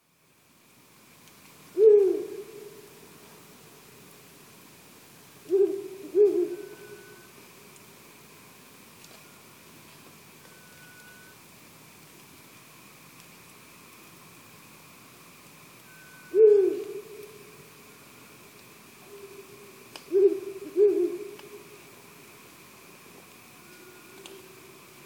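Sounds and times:
owl calling in Tsubetsu: 1.8s - 2.9s, 5.5s - 7.3s, 15.9s - 17.5s, 19.1s - 21.7s.

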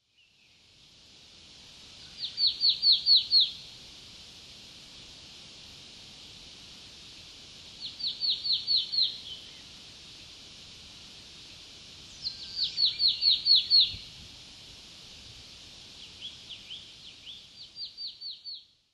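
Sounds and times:
Marsh Tit calling in Tomakomai: 2.1s - 3.6s, 7.8s - 9.6s, 12.1s - 14.1s, 16.2s - 18.6s.

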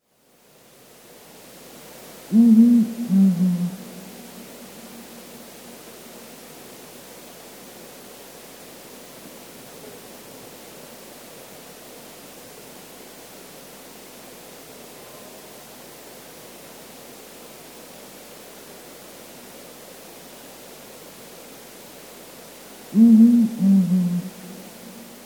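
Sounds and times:
Blakiston's fish owl calling in Ashoro: 2.3s - 4.6s, 22.9s - 25.2s.

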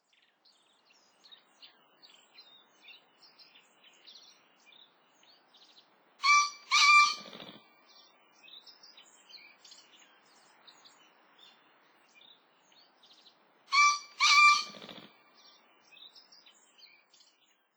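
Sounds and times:
green pheasant calling: 6.2s - 7.5s, 13.7s - 15.0s.

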